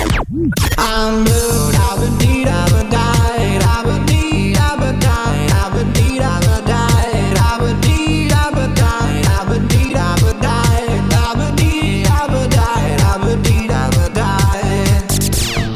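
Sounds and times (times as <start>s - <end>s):
upbeat pop song with four-on-the-floor beat and synths: 0.0s - 15.7s
speech: 0.4s - 1.6s
person singing: 0.8s - 15.7s.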